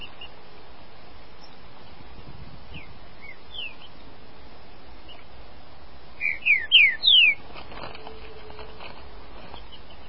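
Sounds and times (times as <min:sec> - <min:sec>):
green-winged saltator singing whistled notes: 0:02.8 - 0:03.9, 0:06.2 - 0:07.4.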